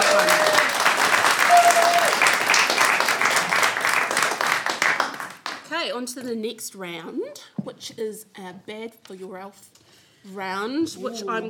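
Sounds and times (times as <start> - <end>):
applause from a room full of people: 0.0 - 5.7
speech: 6.0 - 11.4.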